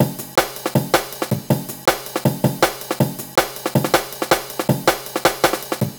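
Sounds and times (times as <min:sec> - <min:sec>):
drum breaks: 0:00.0 - 0:05.9.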